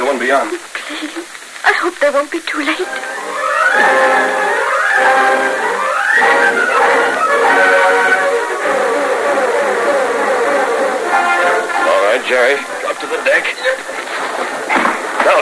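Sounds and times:
speech: 0.1 - 8.8, 12.2 - 15.4
boat motor droning: 2.9 - 14.6.

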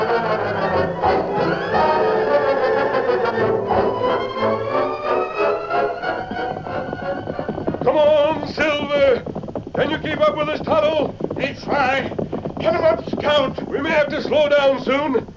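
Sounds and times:
loud dense music: 0.0 - 7.2
horse hooves clip-clopping: 0.0 - 15.3
speech: 13.4 - 15.3.

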